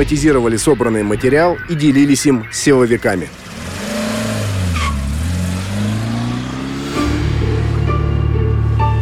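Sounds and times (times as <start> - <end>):
speech: 0.0 - 3.5
18-year-old Lada six engine straining to accelerate after a traffic light turns green: 3.3 - 8.9.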